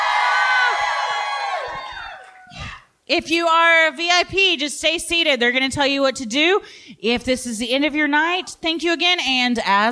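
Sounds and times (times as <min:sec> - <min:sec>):
large live audience at a comedy club screaming and cheering: 0:00.0 - 0:02.6
speech: 0:03.1 - 0:09.9.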